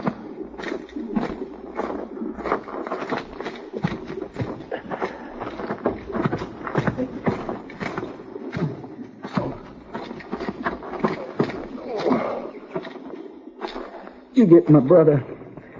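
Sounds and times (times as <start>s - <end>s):
several horses' hooves clip-clopping at a walk on hard ground: 0.0s - 15.7s
speech: 14.4s - 15.3s.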